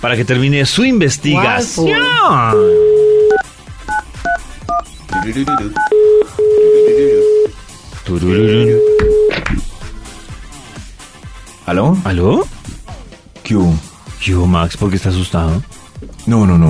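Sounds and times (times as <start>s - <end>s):
speech: 0.0s - 3.1s, 5.2s - 5.9s, 8.1s - 8.9s, 11.7s - 12.6s, 13.5s - 16.6s
touch-tone beeps dialing a telephone number: 2.5s - 7.5s, 8.3s - 9.4s
steady telephone dial tone: 2.6s - 4.0s, 5.8s - 7.5s, 8.6s - 9.3s.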